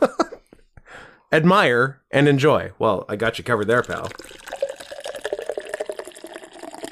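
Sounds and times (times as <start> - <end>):
speech: 1.3 - 4.4
nitro drink poured hard from a chilled can: 3.6 - 6.8.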